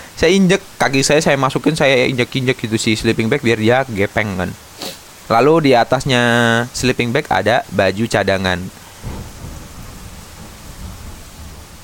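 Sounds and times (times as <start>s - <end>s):
speech: 0.2s - 4.7s, 5.3s - 8.8s
low rumbles of thunder: 5.4s - 11.8s.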